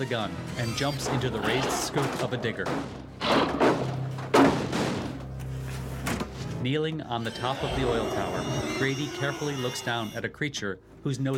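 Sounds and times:
speech: 0.0s - 3.6s, 6.6s - 11.3s
door slammed shut: 1.0s - 5.3s.

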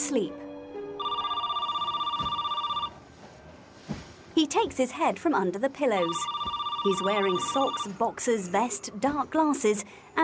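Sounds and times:
speech: 0.1s - 0.4s, 4.4s - 10.2s
telephone ringing with a warbling electronic trill: 1.0s - 3.0s, 6.0s - 8.0s.

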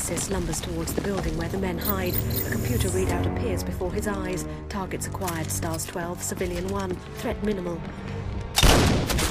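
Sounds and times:
speech: 0.1s - 8.9s
sniper rifle gunshot: 8.6s - 9.2s.

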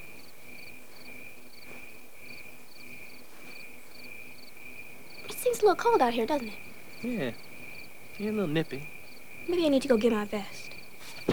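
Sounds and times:
crickets chirping: 0.0s - 11.3s
speech: 5.6s - 7.5s, 8.2s - 10.6s.

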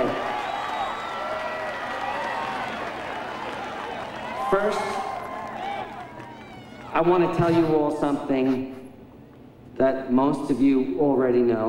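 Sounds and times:
large crowd cheering and clapping at New Year: 0.0s - 7.4s
speech: 4.5s - 5.1s, 7.0s - 8.8s, 9.8s - 11.6s.

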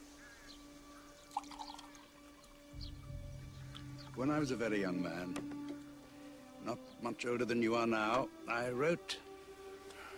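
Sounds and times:
lemonade poured from glass jug into glasses: 1.3s - 2.6s
low steady hum: 2.8s - 6.4s
speech: 4.2s - 5.6s, 6.6s - 9.2s.

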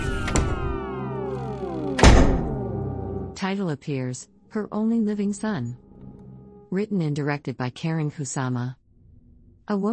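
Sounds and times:
sustained slowly falling tones: 0.0s - 3.4s
white door closing on a room: 2.0s - 2.6s
speech: 3.4s - 5.8s, 6.7s - 8.8s, 9.7s - 9.9s.

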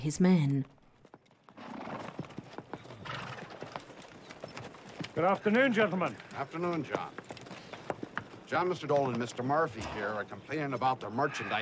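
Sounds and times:
speech: 0.0s - 0.8s, 5.2s - 7.2s, 8.5s - 11.6s
horses' hooves as riders on horseback come down a bank: 0.6s - 11.6s
horse whinny: 1.5s - 3.7s, 11.1s - 11.6s.

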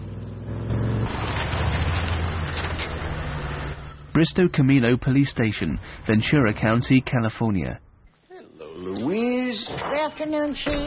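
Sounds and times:
truck engine starting and driving away: 0.0s - 7.2s
speech: 4.2s - 7.8s, 8.8s - 10.8s.

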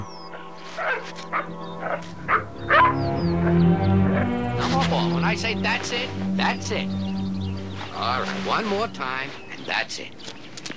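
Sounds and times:
steady low hum: 0.0s - 9.3s
dogs barking and yipping playfully: 0.2s - 4.4s
speech: 1.0s - 4.4s, 5.0s - 7.1s, 8.0s - 10.3s.

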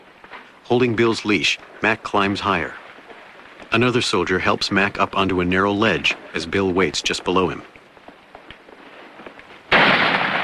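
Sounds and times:
speech: 0.7s - 2.8s, 3.7s - 7.7s
gunfire striking a steep rock face: 9.7s - 10.4s.

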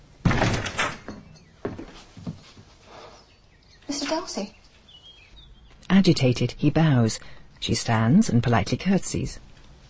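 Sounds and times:
rectory door flung open with a bang: 0.2s - 1.3s
door knocks and thumps as it settles: 0.2s - 1.9s
speech: 4.1s - 4.6s, 6.0s - 9.5s.

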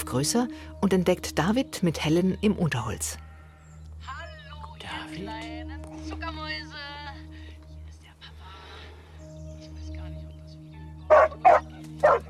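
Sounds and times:
speech: 0.1s - 3.3s
dog barking in a forest: 11.1s - 12.2s.

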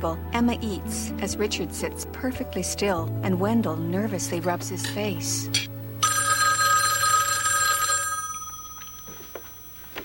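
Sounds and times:
speech: 0.0s - 5.7s
telephone bell ringing: 6.0s - 10.0s.

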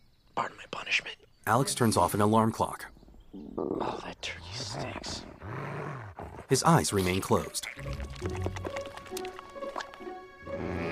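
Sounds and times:
speech: 1.0s - 4.9s, 6.5s - 8.3s
drool dripping onto a man's face in bed: 7.7s - 10.2s.

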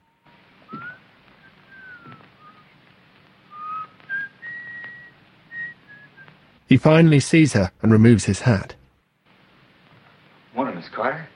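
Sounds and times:
man whistling a tune as he walks in: 0.7s - 2.7s, 3.5s - 6.3s
speech: 6.7s - 8.8s.

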